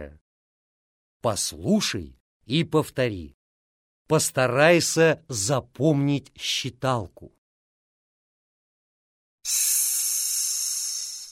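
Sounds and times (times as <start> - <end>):
speech: 0.0 - 0.2, 1.2 - 3.4, 4.1 - 7.4, 9.5 - 9.8
snake-like hissing, probably a voice imitating a snake: 9.5 - 11.3.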